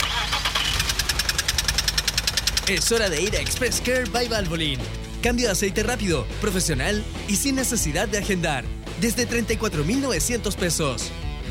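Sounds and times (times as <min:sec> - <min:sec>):
car engine cranking, sputtering and knocking with metallic clatter: 0:00.0 - 0:06.9
speech: 0:02.7 - 0:11.4.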